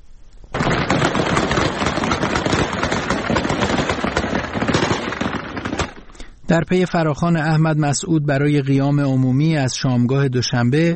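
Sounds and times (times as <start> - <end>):
heavy gunfire: 0.6 - 6.1
speech: 6.5 - 10.9.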